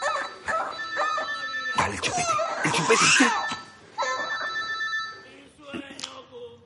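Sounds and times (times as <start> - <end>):
mobile phone ringing with a bright electronic melodic ringtone: 0.0 - 2.4, 3.0 - 5.4
speech: 1.9 - 3.6.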